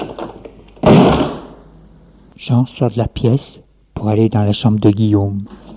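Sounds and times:
door slamming heavily: 0:00.8 - 0:01.5
speech: 0:02.4 - 0:05.6.

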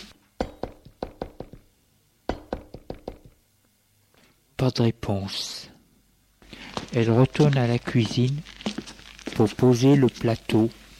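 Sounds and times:
maid knocking on a door: 0:00.4 - 0:01.6, 0:02.3 - 0:03.3
speech: 0:04.6 - 0:05.7, 0:06.9 - 0:08.5, 0:09.4 - 0:10.8.

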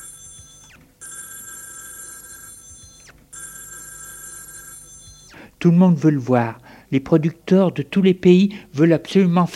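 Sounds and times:
telephone bell ringing in a hotel room: 0:00.0 - 0:05.4
speech: 0:05.6 - 0:09.5.

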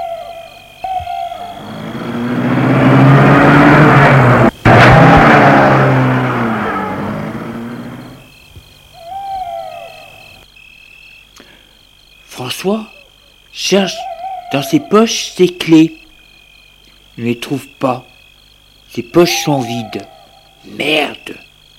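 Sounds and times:
owl hooting: 0:00.0 - 0:02.3, 0:08.9 - 0:10.4, 0:12.9 - 0:16.2, 0:19.0 - 0:21.3
car engine starting and accelerating away: 0:01.5 - 0:08.2
speech: 0:13.7 - 0:16.0, 0:17.2 - 0:18.1, 0:18.9 - 0:20.1, 0:20.7 - 0:21.4.

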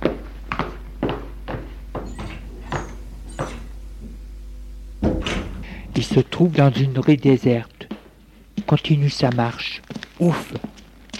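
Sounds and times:
steady footsteps: 0:00.0 - 0:04.2, 0:05.0 - 0:11.1
low hum: 0:00.0 - 0:11.1
door opening with a knock and clatter: 0:02.0 - 0:04.2, 0:05.0 - 0:06.9
speech: 0:06.0 - 0:07.8, 0:08.7 - 0:10.6.

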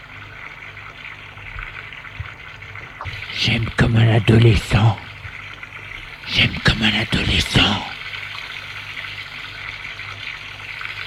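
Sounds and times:
ice-cold shower water spraying: 0:00.0 - 0:11.0
speech: 0:03.4 - 0:05.0, 0:06.4 - 0:07.9.

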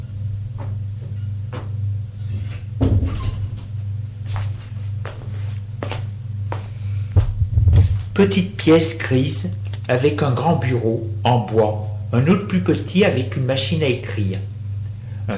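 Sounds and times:
constant low electrical hum: 0:00.0 - 0:15.3
door opening and shutting with a solid clunk: 0:02.2 - 0:03.7
man's steady footsteps: 0:04.2 - 0:08.2
speech: 0:08.2 - 0:14.5.

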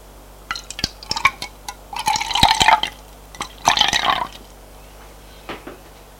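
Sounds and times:
water pouring into a glass: 0:00.5 - 0:04.4.

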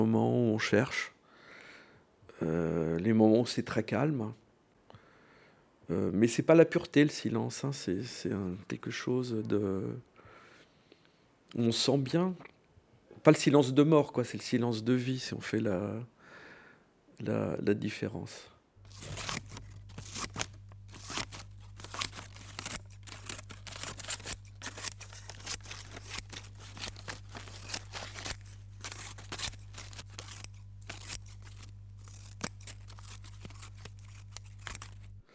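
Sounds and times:
speech: 0:00.0 - 0:01.2, 0:02.4 - 0:04.4, 0:05.9 - 0:10.1, 0:11.5 - 0:12.5, 0:13.2 - 0:16.1, 0:17.2 - 0:19.3
scissors snipping: 0:18.8 - 0:35.2
low steady hum: 0:18.8 - 0:35.3.

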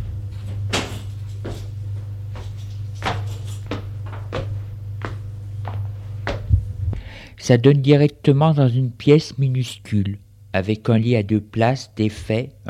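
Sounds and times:
constant low hum: 0:00.0 - 0:12.6
footsteps thudding across a room: 0:00.5 - 0:07.0
speech: 0:07.5 - 0:12.6.

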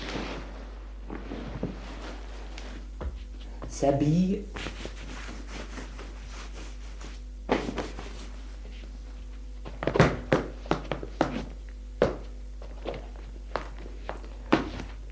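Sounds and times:
hurried footsteps of a woman running to a door across a hard floor: 0:02.9 - 0:03.7, 0:07.5 - 0:15.1
speech: 0:03.8 - 0:04.7.

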